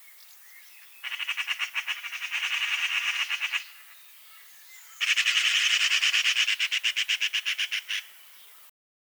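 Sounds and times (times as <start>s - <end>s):
Eurasian magpie Pica pica chatter: 0.0s - 8.7s.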